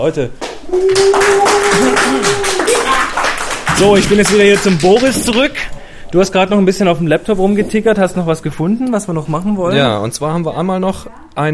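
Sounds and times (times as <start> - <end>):
speech: 0.0 - 2.9, 3.8 - 11.5
small group applauding: 0.4 - 5.6.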